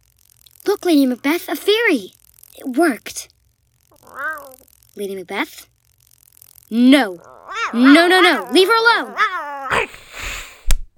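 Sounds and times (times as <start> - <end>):
sharp burst of noise: 0.0 - 9.2
speech: 0.7 - 3.4, 4.1 - 5.7, 6.7 - 10.1
cat hissing: 3.9 - 4.7, 7.0 - 10.6
cat yowling: 3.9 - 4.7, 7.2 - 10.0.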